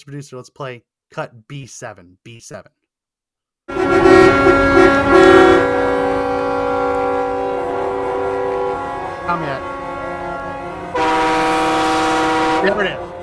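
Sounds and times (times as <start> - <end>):
speech: 0.0 - 2.8, 9.3 - 9.8, 12.6 - 13.1
air-powered train horn on a truck blaring: 3.7 - 13.2.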